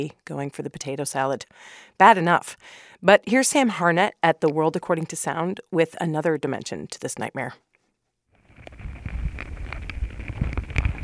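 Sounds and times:
speech: 0.0 - 7.7
ants biting contact microphones, making popping noises: 8.5 - 11.0.

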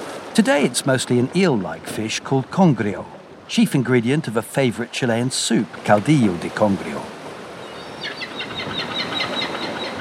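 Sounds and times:
speech: 0.4 - 7.2
gulls and pelicans squabbling over scraps: 7.6 - 9.9.

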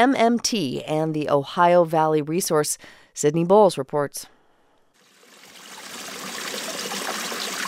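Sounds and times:
speech: 0.0 - 4.3
spring water trickling into a plastic jug beside a four-lane highway: 5.0 - 7.6.

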